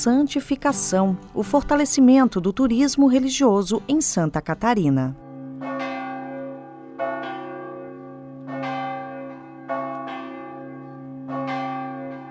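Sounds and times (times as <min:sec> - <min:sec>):
speech: 0:00.0 - 0:05.2
church bells tolling from a sanctuary church tower in Nova Trento, Santa Catarina, Brazil: 0:05.2 - 0:12.3.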